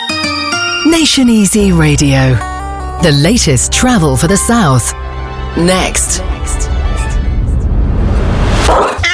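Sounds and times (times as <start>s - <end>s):
speech: 0.9s - 6.7s
dense rushing noise: 4.2s - 8.8s
dog barking: 8.7s - 9.0s.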